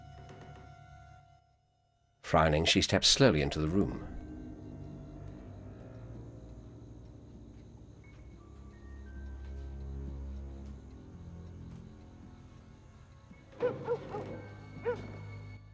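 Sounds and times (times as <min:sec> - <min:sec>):
speech: 0:02.3 - 0:04.2
low sustained musical drone: 0:02.3 - 0:15.7
dog barking sharply: 0:13.6 - 0:15.2.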